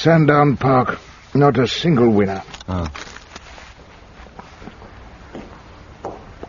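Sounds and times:
speech: 0.0s - 3.1s
soft footsteps beyond a closed door: 3.1s - 6.4s.

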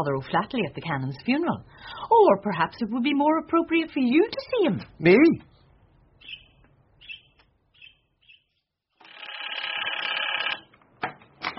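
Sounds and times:
speech: 0.0s - 5.5s
telephone ringing with a rattling bell at a call office: 9.0s - 10.7s.

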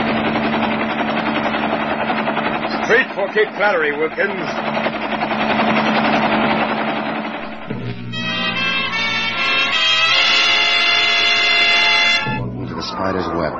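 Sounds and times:
helicopter flying with dense rotor chatter: 0.0s - 12.4s
low helicopter engine hum: 0.0s - 13.0s
speech: 2.9s - 4.9s, 13.0s - 13.5s.

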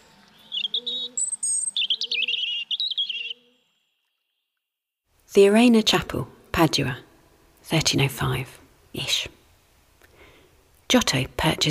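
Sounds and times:
robin singing: 0.0s - 4.4s
speech: 5.3s - 7.1s, 7.7s - 9.4s, 10.9s - 11.6s.

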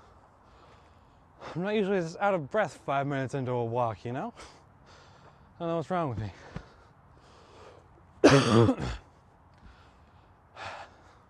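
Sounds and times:
speech: 1.5s - 4.6s, 5.6s - 6.5s, 8.3s - 9.0s
person coughing: 8.2s - 9.0s
throat clearing: 8.2s - 9.0s.

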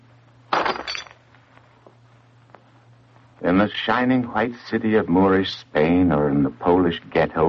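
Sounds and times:
faint low hum: 0.0s - 7.4s
glass crushed underfoot and shattering: 0.5s - 1.2s
tinkle of glass shards: 0.6s - 1.2s
speech: 3.4s - 7.4s.

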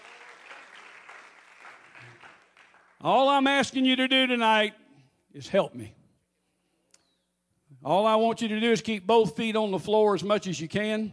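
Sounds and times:
church congregation clapping hands in praise: 0.0s - 3.8s
speech: 3.0s - 6.0s, 7.8s - 11.1s.

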